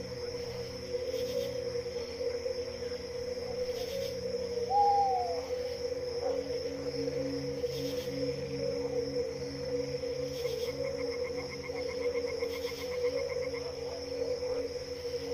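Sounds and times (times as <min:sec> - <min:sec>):
crickets chirping: 0:00.0 - 0:15.3
frogs croaking: 0:00.0 - 0:15.3
insects buzzing: 0:00.0 - 0:15.3.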